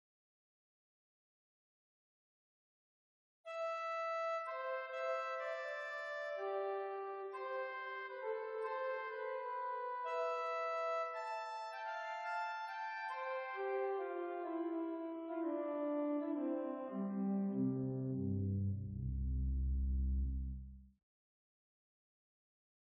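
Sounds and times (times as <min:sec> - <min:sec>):
organ playing an octave eight: 0:03.6 - 0:19.5.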